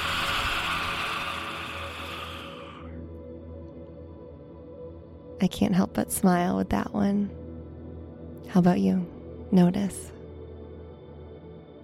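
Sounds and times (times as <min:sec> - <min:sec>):
forceful breathy lion's-breath exhale: 0:00.0 - 0:03.1
speech: 0:05.4 - 0:07.4, 0:08.5 - 0:10.1.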